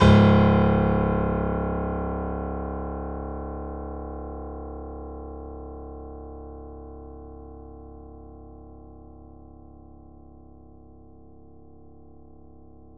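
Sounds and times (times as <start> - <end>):
grand piano C sharp zero note played fortissimo: 0.0 - 4.2.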